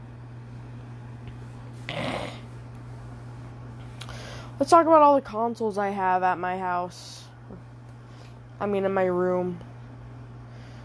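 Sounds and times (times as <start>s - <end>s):
low steady hum: 0.0s - 10.8s
person sniffing hard to clear mucus: 1.9s - 2.5s
speech: 4.6s - 7.3s, 8.6s - 9.7s.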